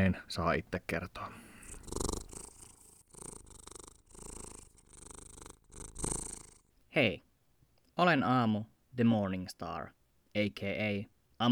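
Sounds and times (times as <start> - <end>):
speech: 0.0 - 2.1, 7.0 - 7.3, 8.0 - 11.5
eight-year-old Siberian cat purring: 1.3 - 6.8.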